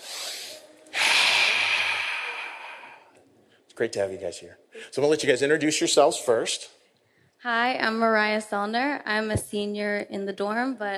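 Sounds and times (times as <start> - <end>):
group of people taking a big breath together: 0.0 - 3.6
speech: 3.8 - 6.8, 7.4 - 10.9.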